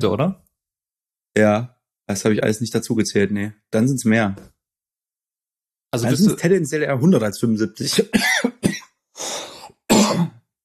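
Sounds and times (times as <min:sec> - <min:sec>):
speech: 0:00.0 - 0:00.4, 0:01.4 - 0:04.6, 0:05.9 - 0:08.6
person coughing: 0:07.9 - 0:08.9, 0:09.6 - 0:10.4.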